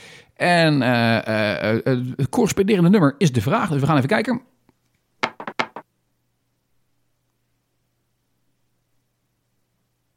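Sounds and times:
speech: 0.4s - 4.5s
dice rattling and clattering from a phone app: 5.2s - 5.8s.

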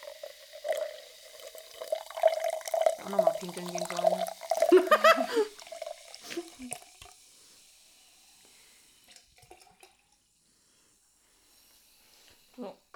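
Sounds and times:
pink-orange watermelon carbonated drink fizzing: 0.0s - 10.2s
bubbles popping in carbonated drink: 0.6s - 6.8s
speech: 3.0s - 4.4s, 5.0s - 5.6s
laughter: 4.6s - 5.5s.

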